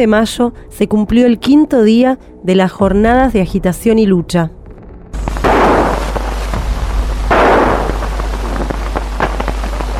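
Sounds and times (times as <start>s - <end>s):
speech: 0.0s - 4.6s
constant hiss and crackle: 5.2s - 9.9s
.45 pistol gunshots fired by a police officer during street clashes: 5.4s - 6.3s, 7.3s - 9.5s.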